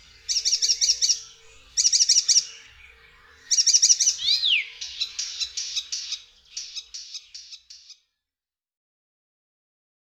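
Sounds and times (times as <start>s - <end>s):
Icterine warbler song: 0.0s - 8.2s.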